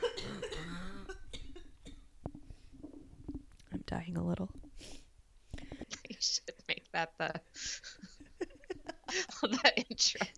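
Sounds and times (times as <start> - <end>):
person coughing: 0.0 - 2.0
speech: 3.9 - 4.9, 7.0 - 7.8
rough breaths: 4.8 - 6.0
laughter: 7.6 - 10.3.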